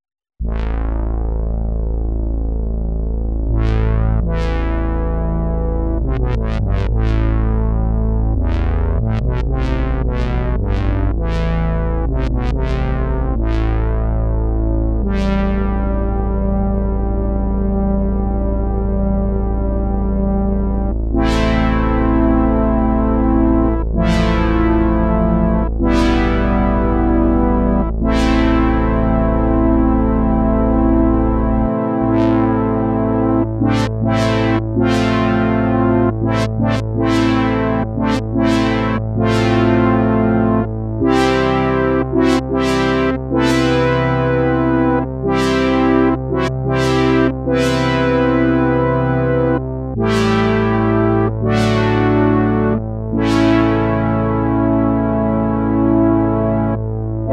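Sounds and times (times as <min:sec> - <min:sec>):
synth brass: 0:00.4 - 0:57.3.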